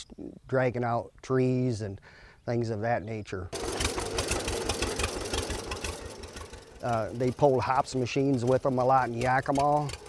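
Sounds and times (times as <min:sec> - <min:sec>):
speech: 0:00.0 - 0:03.7, 0:06.8 - 0:10.0
tractor engine idling: 0:03.6 - 0:10.0.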